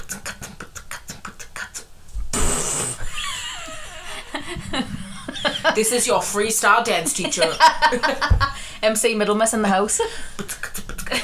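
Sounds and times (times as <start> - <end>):
person beatboxing by saying boots and cats: 0.0 - 3.0, 10.4 - 11.2
laughter: 3.0 - 6.2, 7.0 - 8.6, 10.8 - 11.2
speech: 5.8 - 10.6.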